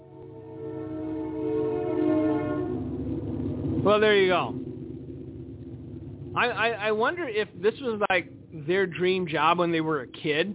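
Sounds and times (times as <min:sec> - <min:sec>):
train whistle blowing: 0:00.0 - 0:02.8
speech: 0:03.8 - 0:04.6, 0:06.4 - 0:10.5.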